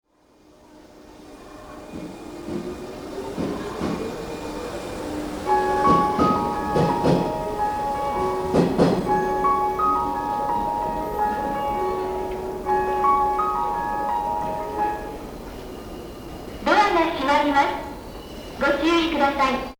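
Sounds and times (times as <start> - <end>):
train station departure melody with fast piano and bells: 0.2 - 19.7.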